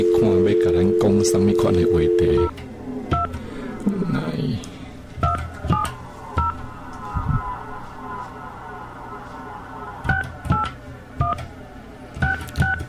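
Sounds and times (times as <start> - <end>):
telephone keypad dialing tones: 0.0 - 2.5
speech: 0.0 - 2.7
low hum: 0.0 - 12.8.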